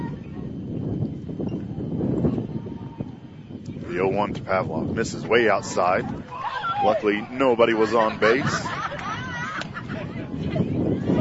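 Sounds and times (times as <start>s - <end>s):
wind buffeting headset microphones during a baseball game: 0.0s - 11.1s
speech: 4.0s - 8.8s
laughter: 7.4s - 11.1s.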